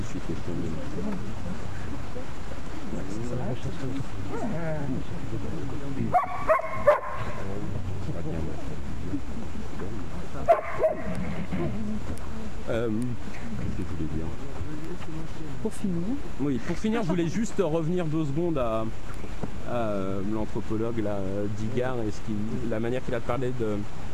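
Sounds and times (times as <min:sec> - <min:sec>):
speech: 0:00.3 - 0:09.7, 0:10.4 - 0:24.1
dogs barking: 0:06.1 - 0:07.4, 0:10.4 - 0:11.2.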